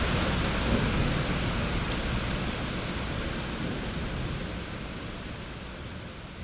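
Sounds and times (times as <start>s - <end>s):
low thunder rumbling: 0.0s - 4.8s
heavy downpour over a city: 0.0s - 6.4s.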